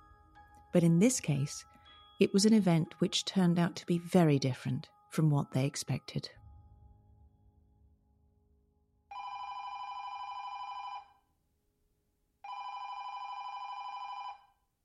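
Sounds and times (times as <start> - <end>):
speech: 0.7 - 6.4
telephone ringing with an electronic trill: 9.1 - 11.2, 12.4 - 14.6.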